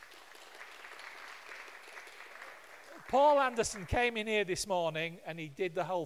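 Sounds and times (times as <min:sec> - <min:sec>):
room full of people applauding: 0:00.0 - 0:04.2
speech: 0:03.1 - 0:06.0.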